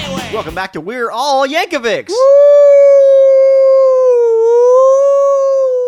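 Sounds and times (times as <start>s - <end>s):
speech: 0.4s - 2.5s
voice imitating an ambulance siren: 2.1s - 5.8s.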